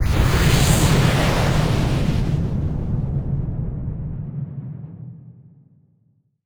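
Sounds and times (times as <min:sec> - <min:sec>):
large magic wind whoosh: 0:00.0 - 0:04.3.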